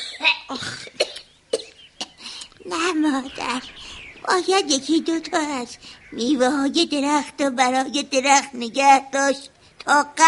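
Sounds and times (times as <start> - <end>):
elderly woman coughing: 0.0 - 2.2
speech: 0.2 - 1.0, 3.1 - 10.2.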